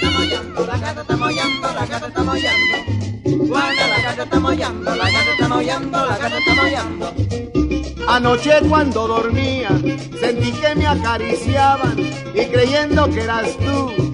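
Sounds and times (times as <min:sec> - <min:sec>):
voices imitating a cat's meowing in sung tones: 0:00.0 - 0:07.1
music with a rhythmic beat: 0:00.0 - 0:14.1
speech: 0:00.6 - 0:02.6, 0:08.1 - 0:14.1.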